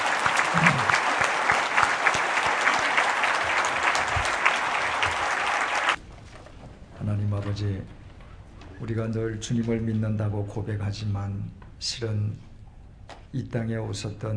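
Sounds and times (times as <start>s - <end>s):
room full of people applauding for a professor: 0.0s - 6.0s
speech: 7.6s - 8.0s, 8.8s - 12.5s, 13.3s - 14.3s.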